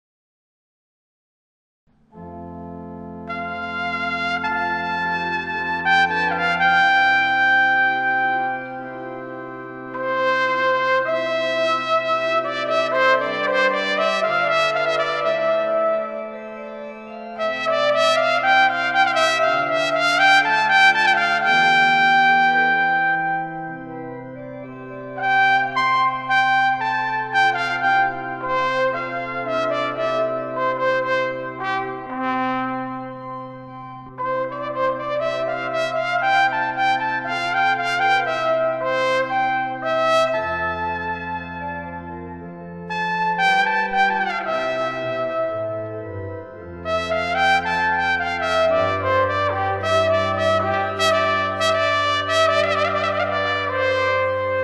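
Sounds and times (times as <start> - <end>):
adagio music: 2.1 - 54.6.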